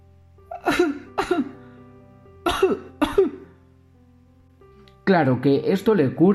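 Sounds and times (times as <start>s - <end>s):
person coughing harshly: 0.5s - 1.6s, 2.4s - 3.5s
speech: 5.1s - 6.3s.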